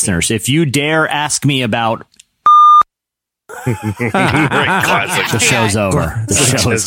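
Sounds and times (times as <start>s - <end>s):
speech: 0.0s - 2.2s, 3.5s - 6.8s
censor bleep tone: 2.5s - 2.9s
laughter and chuckling: 3.5s - 5.7s.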